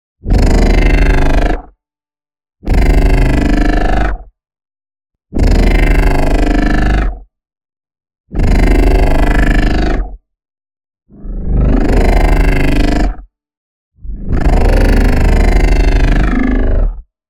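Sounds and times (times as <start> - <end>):
tech growl synth bass: 0.3 - 1.6, 2.7 - 4.1, 5.4 - 7.1, 8.4 - 10.0, 11.3 - 13.0, 14.1 - 17.0.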